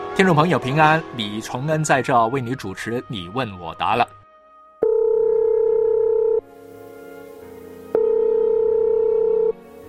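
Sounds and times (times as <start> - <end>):
speech: 0.1 - 4.1
telephone ringing for an incoming call: 4.8 - 6.4, 7.9 - 9.6.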